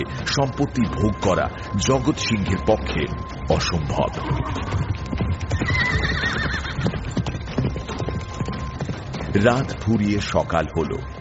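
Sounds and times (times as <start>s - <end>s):
speech: 0.0s - 6.4s, 9.3s - 11.1s
horse hooves galloping in the dark: 0.0s - 11.1s
loud horse whinny: 4.2s - 4.9s, 5.5s - 7.1s.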